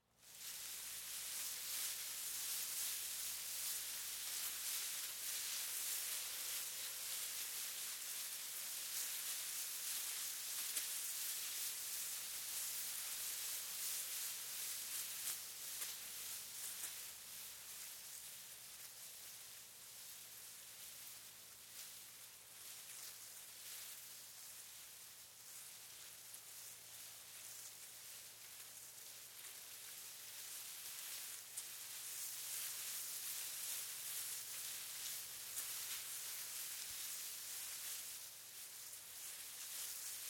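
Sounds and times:
wind rustling leaves and tall grass: 0.2s - 40.2s.

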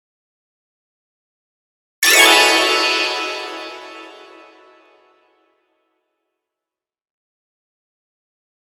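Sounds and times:
magic pixie dust shimmer twinkle: 2.0s - 5.1s.

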